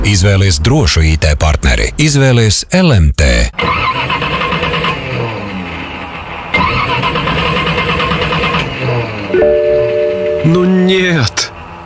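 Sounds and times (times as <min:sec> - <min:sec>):
old car engine cranking roughly and sputtering: 0:00.0 - 0:10.4, 0:11.0 - 0:11.8
speech: 0:00.1 - 0:03.8, 0:10.5 - 0:11.4
wavering tonal whines: 0:09.3 - 0:10.8.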